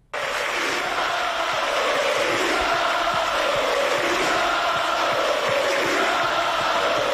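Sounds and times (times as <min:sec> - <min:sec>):
football stadium crowd in Santander Spain cheering a departing player: 0:00.0 - 0:07.1.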